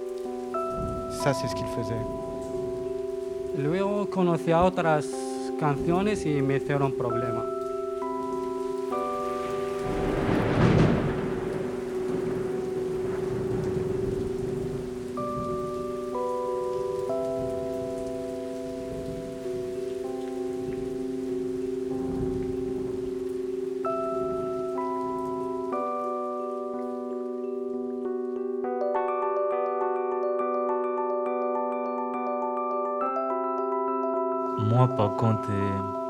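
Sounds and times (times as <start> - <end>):
steady rain hissing: 0.0 - 28.3
soft sustained musical chords: 0.0 - 36.0
speech: 1.1 - 2.3, 3.6 - 7.5, 35.2 - 35.7.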